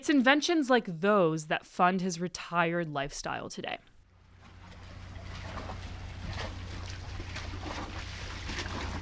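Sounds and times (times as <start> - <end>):
speech: 0.0 - 3.9
low hum: 4.0 - 8.9
water lapping against the hull of a houseboat: 4.1 - 8.9.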